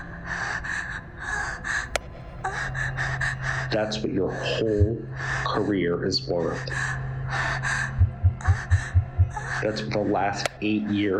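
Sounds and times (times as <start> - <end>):
person panting: 0.1 - 5.6, 6.7 - 9.6
speech: 3.7 - 6.8, 9.6 - 11.1.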